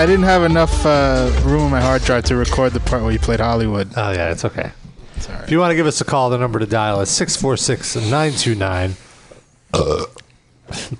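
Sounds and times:
speech: 0:00.0 - 0:09.1, 0:09.7 - 0:10.9
loud rumbling and throaty burps: 0:09.7 - 0:10.9.

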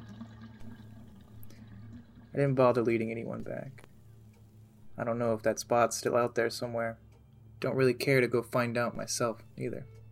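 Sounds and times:
water rushing through a long deep pipe: 0:00.0 - 0:03.8
speech: 0:02.4 - 0:03.8, 0:05.0 - 0:07.0, 0:07.6 - 0:10.0.

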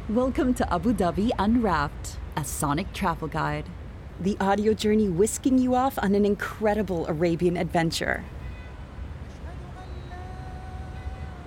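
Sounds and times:
morning city traffic low rumble of vehicles: 0:00.0 - 0:11.4
speech: 0:00.1 - 0:08.4
horn-like tone: 0:08.2 - 0:08.9, 0:09.8 - 0:11.4.

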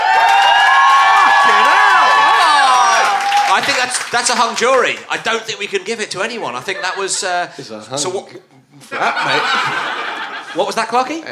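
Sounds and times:
live audience shouts and whoops: 0:00.0 - 0:04.0
live audience applauding: 0:00.0 - 0:05.8
speech: 0:03.6 - 0:11.3
laughter: 0:06.2 - 0:07.7, 0:08.8 - 0:11.0.

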